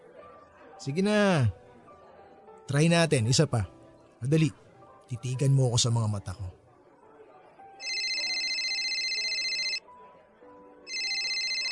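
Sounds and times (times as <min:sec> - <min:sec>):
speech: 0:00.8 - 0:01.6, 0:02.7 - 0:06.6
electronic phone ringtone signalling an incoming call: 0:07.8 - 0:09.8, 0:10.9 - 0:11.7.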